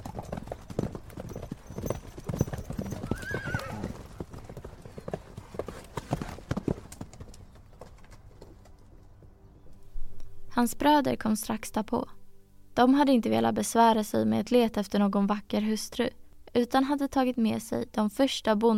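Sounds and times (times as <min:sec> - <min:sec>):
horse hooves clip-clopping: 0:00.0 - 0:09.4
horse whinnying: 0:02.4 - 0:04.3
faint birdsong: 0:07.1 - 0:10.0
speech: 0:10.6 - 0:12.2, 0:12.8 - 0:18.7.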